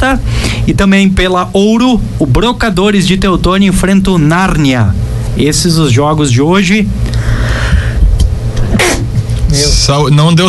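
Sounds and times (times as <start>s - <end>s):
steady low rumble: 0.0s - 10.4s
speech: 0.1s - 7.4s, 9.5s - 10.4s
sneeze caused by heat and air conditioning: 8.7s - 9.2s.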